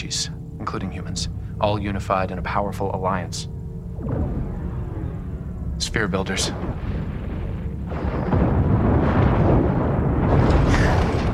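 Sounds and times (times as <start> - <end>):
speech: 0.1 - 4.4, 6.0 - 7.0
large spaceship blowing apart during a space battle: 3.9 - 11.3.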